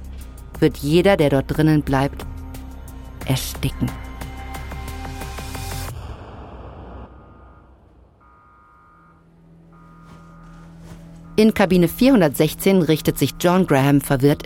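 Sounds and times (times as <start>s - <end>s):
speech: 0.6s - 2.3s, 3.3s - 4.0s, 11.4s - 14.4s
electronic alarm tones: 7.1s - 14.4s
low mechanical hum: 7.6s - 14.3s
ship alarm bell ringing on a passenger ship: 8.2s - 14.4s.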